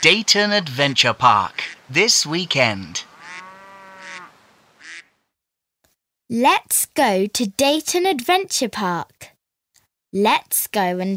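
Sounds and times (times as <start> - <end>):
duck quacking: 0.0 - 0.6, 1.3 - 5.1
speech: 0.0 - 3.1, 6.3 - 9.3, 10.1 - 11.1.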